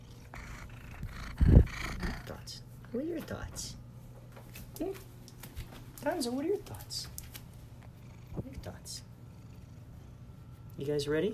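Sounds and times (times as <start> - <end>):
cat purring: 0.0 - 2.6, 7.7 - 10.7
speech: 2.9 - 3.8, 4.8 - 5.1, 6.0 - 7.1, 10.8 - 11.3.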